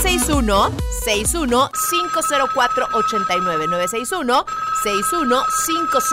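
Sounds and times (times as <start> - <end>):
dense voice-like jingle with no clear words: 0.0 - 6.1
speech: 0.1 - 6.1
loud telephone ringing effect with warbling sweeping tones: 1.7 - 6.1.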